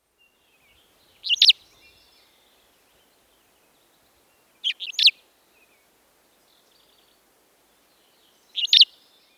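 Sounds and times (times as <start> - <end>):
Cassin's finch calling: 1.2 - 1.6, 8.6 - 8.9.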